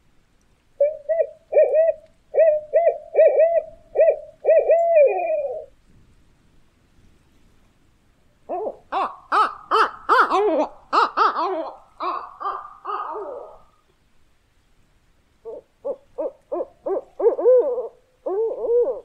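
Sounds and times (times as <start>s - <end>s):
barred owl calling: 0.8s - 5.7s, 8.5s - 13.8s, 15.4s - 19.0s.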